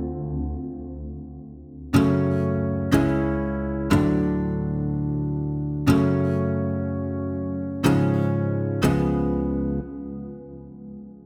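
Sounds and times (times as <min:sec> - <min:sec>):
indie folk chords: 0:01.9 - 0:10.3.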